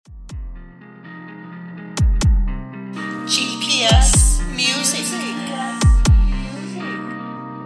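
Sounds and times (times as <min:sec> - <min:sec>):
heartbeat: 0:00.0 - 0:00.6, 0:02.0 - 0:02.6, 0:04.0 - 0:04.6, 0:05.8 - 0:06.5.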